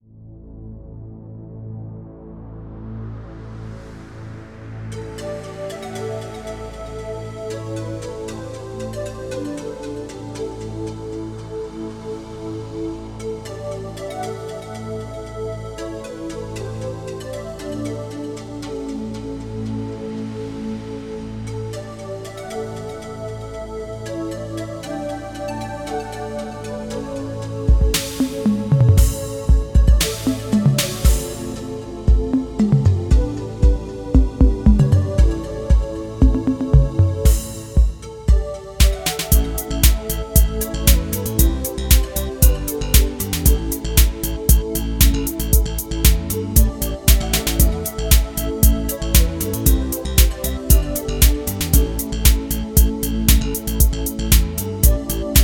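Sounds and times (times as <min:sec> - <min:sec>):
analog drums: 0:27.7 - 0:55.4.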